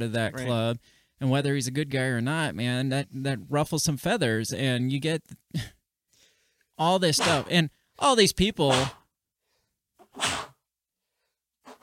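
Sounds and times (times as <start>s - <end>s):
speech: 0.0s - 5.8s, 6.8s - 9.0s
person sneezing: 10.2s - 10.5s.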